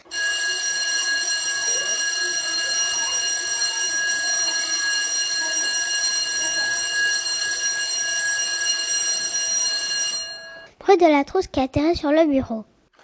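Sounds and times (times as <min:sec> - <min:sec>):
electric school bell ringing: 0:00.0 - 0:10.7
speech: 0:10.9 - 0:12.7.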